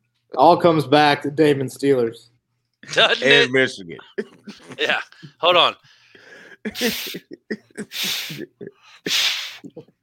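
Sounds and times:
speech: 0.4 - 6.0, 6.6 - 10.0
laughter: 4.0 - 5.4, 6.6 - 8.8
strong breathy puffs of air blowing up a balloon: 7.9 - 8.4, 9.0 - 9.7.

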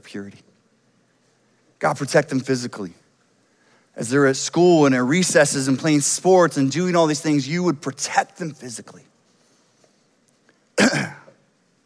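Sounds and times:
speech: 0.0 - 0.5, 1.8 - 3.0, 4.0 - 9.1, 10.8 - 11.2
harsh cough: 10.8 - 11.4.

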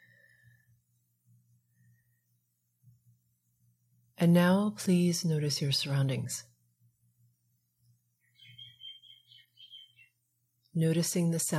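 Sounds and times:
low steady hum: 0.0 - 11.5
speech: 4.2 - 6.5, 10.8 - 11.5
birds chirping: 8.2 - 11.2.

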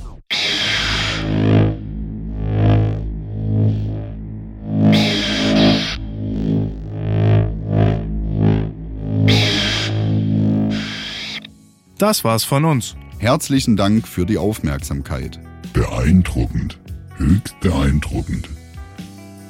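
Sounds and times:
recreated sci-fi laser sword hum sound effect: 0.3 - 11.6
sharp crackling bursts: 0.3 - 11.7
speech: 12.0 - 18.6.

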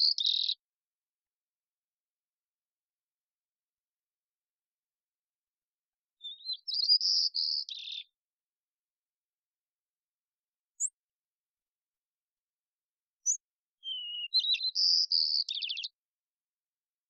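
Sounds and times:
immature White-crowned sparrow Zonotrichia leucophrys whistled song: 0.0 - 0.6, 6.2 - 8.2, 10.7 - 11.0, 13.2 - 16.0.

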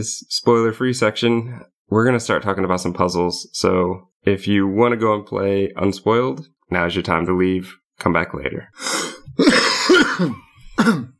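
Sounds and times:
speech: 0.0 - 11.1
person coughing in a loud coughing fit: 8.8 - 11.1.

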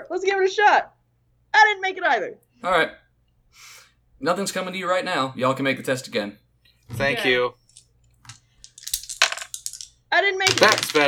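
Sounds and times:
speech: 0.0 - 7.6, 10.1 - 11.0
small die falling and clattering across a hard surface: 7.7 - 11.0.

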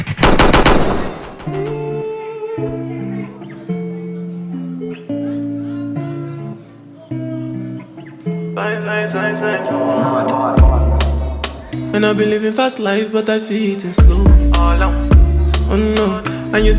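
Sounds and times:
machine-gun-style gunshot sound effects: 0.1 - 1.7
dancehall track with steady musical beat: 7.9 - 16.7
speech: 12.0 - 16.7.

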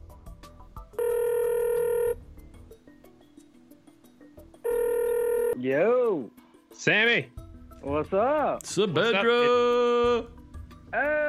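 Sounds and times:
telephone ring tone while a call is being dialed: 1.0 - 2.2, 4.6 - 5.6
speech: 5.6 - 11.2.

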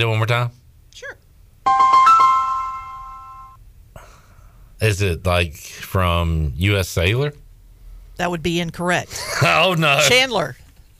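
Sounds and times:
speech: 0.0 - 2.1, 4.8 - 7.4, 8.2 - 10.6
quick bright electronic notes of a jingle: 1.7 - 3.6
laughter: 9.1 - 10.1.

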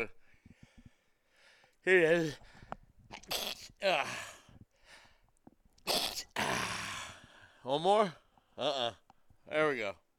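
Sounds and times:
speech: 0.0 - 0.2, 1.8 - 2.5, 3.3 - 4.3, 7.6 - 10.0
loud run of sneezes with breathy build-up: 3.1 - 3.8, 5.8 - 7.0.

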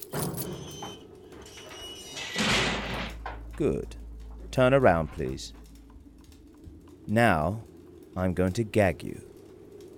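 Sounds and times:
heavy metal cell door sliding shut: 0.1 - 6.0
speech: 3.6 - 5.6, 7.1 - 9.3.

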